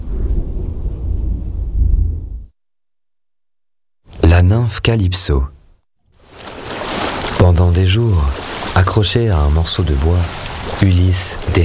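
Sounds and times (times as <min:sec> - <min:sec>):
loud crash of thunder: 0:00.0 - 0:02.5
speech: 0:04.5 - 0:05.6, 0:07.5 - 0:11.6.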